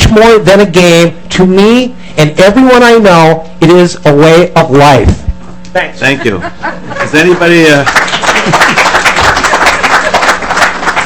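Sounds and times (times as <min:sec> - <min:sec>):
speech: 0:00.1 - 0:08.9
laughter: 0:06.0 - 0:10.6
audience applauding: 0:07.0 - 0:11.0.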